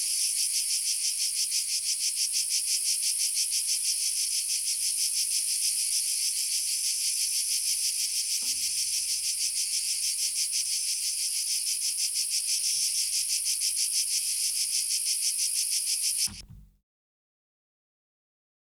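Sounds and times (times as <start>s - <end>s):
two cicada species buzzing in hazy sun: 0.0s - 16.4s
recorder handling noise clunk: 16.3s - 16.8s
thump: 16.3s - 16.8s.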